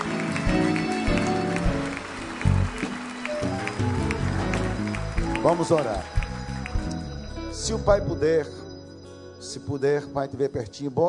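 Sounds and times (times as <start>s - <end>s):
large crowd applauding: 0.0s - 7.4s
low musical tones: 0.0s - 10.8s
speech: 5.4s - 6.2s, 7.6s - 8.6s, 9.4s - 11.0s.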